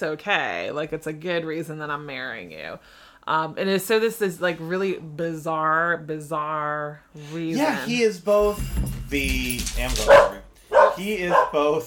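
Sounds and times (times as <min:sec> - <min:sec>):
speech: 0:00.0 - 0:10.4, 0:11.0 - 0:11.8
puppy barking in high-pitched yaps: 0:10.0 - 0:11.7.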